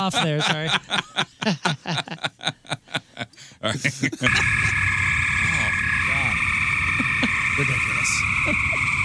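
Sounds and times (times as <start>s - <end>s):
speech: 0.0s - 2.6s, 3.8s - 4.9s, 7.6s - 8.8s
laughter: 0.0s - 4.8s, 7.0s - 9.0s
tree frogs calling at night outdoors heard through an opened window: 4.3s - 9.0s.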